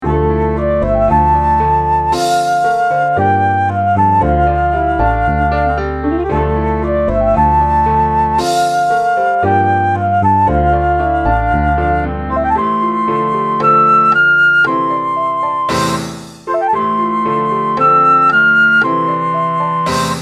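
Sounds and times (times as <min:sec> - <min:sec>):
exotic classical music: 0:00.0 - 0:20.2.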